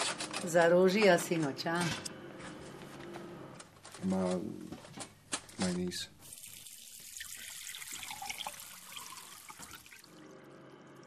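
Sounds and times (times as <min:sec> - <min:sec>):
speech: 0:00.4 - 0:02.1, 0:04.0 - 0:04.8, 0:05.6 - 0:06.2
faucet running water for drinking: 0:06.2 - 0:11.0.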